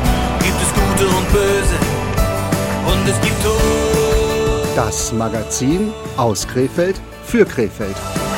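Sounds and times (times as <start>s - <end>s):
train rolling into a terminal station with clatter of wheels: 0.0s - 5.9s
speech: 4.8s - 8.2s.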